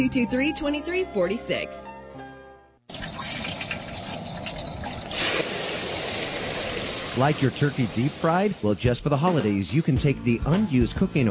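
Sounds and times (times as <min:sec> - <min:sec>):
speech: 0:00.0 - 0:01.9, 0:07.2 - 0:11.2
liquid pouring down a drain: 0:02.9 - 0:08.8.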